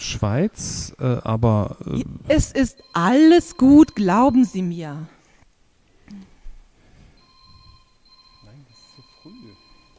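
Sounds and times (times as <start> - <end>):
speech: 0.1 - 5.2
electronic telephone ring with shrill tone: 2.6 - 4.7, 7.2 - 9.9.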